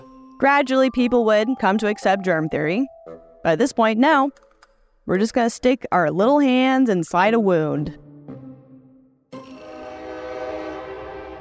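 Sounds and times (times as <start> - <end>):
speech: 0.4 - 4.4, 5.1 - 8.4
train horn: 9.5 - 11.3.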